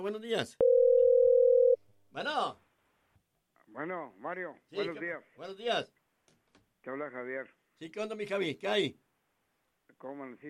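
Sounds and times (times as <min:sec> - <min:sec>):
speech: 0:00.0 - 0:00.6, 0:02.1 - 0:02.6, 0:03.7 - 0:06.0, 0:06.8 - 0:09.0, 0:10.0 - 0:10.4
telephone line tone as a call is taken: 0:00.6 - 0:01.8.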